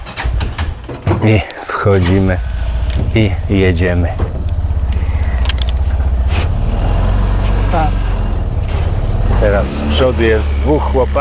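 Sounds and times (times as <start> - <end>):
small three-wheeled auto-rickshaw engine running carrying five people: 0.0 - 0.8, 1.9 - 11.1
speech: 1.2 - 2.5, 3.1 - 4.4, 9.4 - 11.1.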